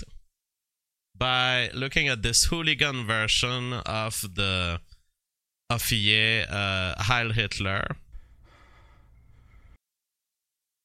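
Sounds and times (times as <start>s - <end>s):
speech: 1.2s - 4.9s, 5.7s - 8.0s
bare-chested man taking a deep heavy raspy breath: 8.1s - 9.8s.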